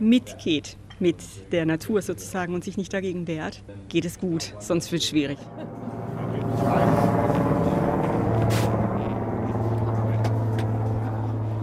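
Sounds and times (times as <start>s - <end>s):
speech: 0.0s - 5.9s, 6.5s - 7.4s
helicopter flying overhead: 4.4s - 11.6s.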